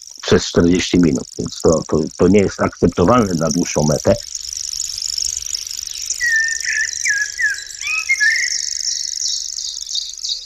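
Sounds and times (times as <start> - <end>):
insects buzzing: 0.0 - 10.4
songbird singing: 0.0 - 10.4
speech: 0.3 - 4.4.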